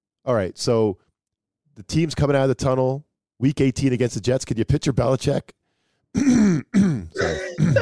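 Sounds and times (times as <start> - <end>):
speech: 0.2 - 1.0, 1.8 - 7.8
man clearing his throat: 6.2 - 7.8.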